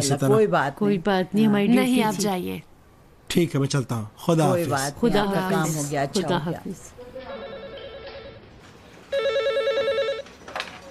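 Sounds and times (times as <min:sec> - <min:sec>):
speech: 0:00.0 - 0:02.7, 0:03.3 - 0:07.0
telephone ringing with warbling electronic tone: 0:07.2 - 0:10.5.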